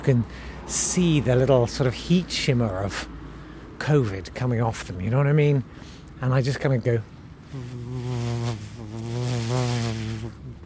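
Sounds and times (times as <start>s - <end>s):
speech: 0.0s - 3.1s, 3.8s - 10.6s
person vocally making a nasal buzzing hum: 7.5s - 10.6s.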